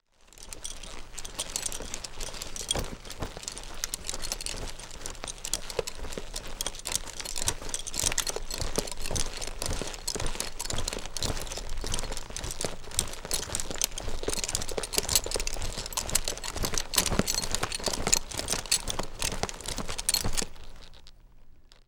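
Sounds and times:
horse saddle moving: 0.1 - 21.7.

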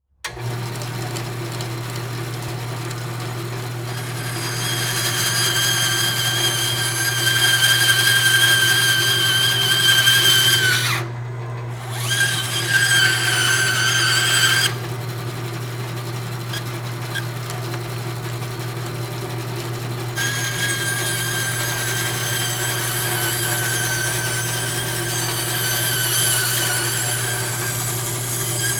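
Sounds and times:
industrial table saw running and cutting: 0.3 - 28.7.

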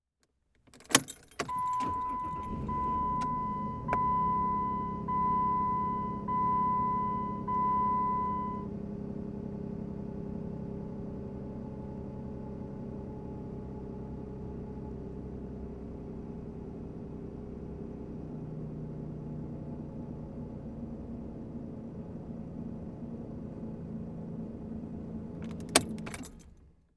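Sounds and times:
Jeep Commander engine starting, idling and switching off heard from interior: 0.6 - 26.9.

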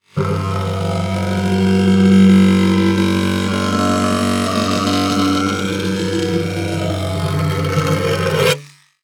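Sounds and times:
electronic trimmer buzzing on a hollow surface: 0.0 - 8.8.

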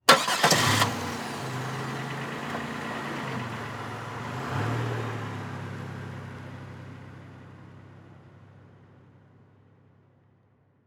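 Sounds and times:
Monte Carlo car starting and driving off slowly: 0.1 - 7.0.

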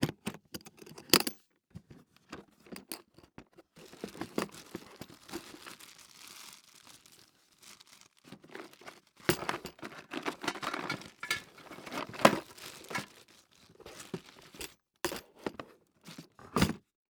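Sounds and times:
rummaging through an emergency first aid kit: 1.8 - 16.9
metal emergency first aid kit opening: 9.3 - 13.1.

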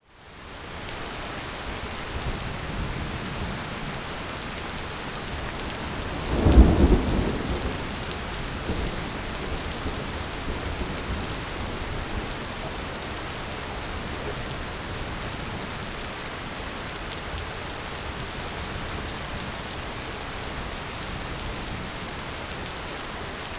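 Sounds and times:
heavy rain in a thunderstorm: 0.0 - 23.5
thunder in a thunderstorm: 6.1 - 11.5.

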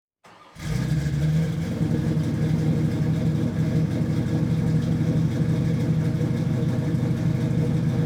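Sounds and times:
Ford High Boy car engine starting idling revving and shutting off: 0.2 - 7.9.

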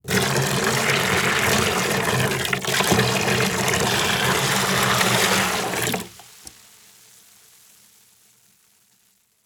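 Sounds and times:
liquid water pouring into a plastic bucket: 0.0 - 6.6.

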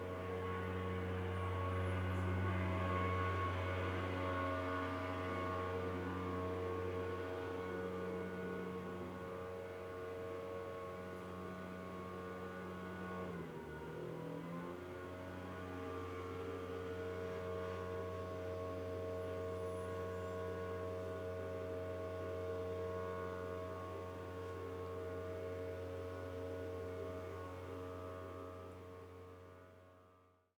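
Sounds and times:
leaf blower running heard from the interior: 0.0 - 29.9.

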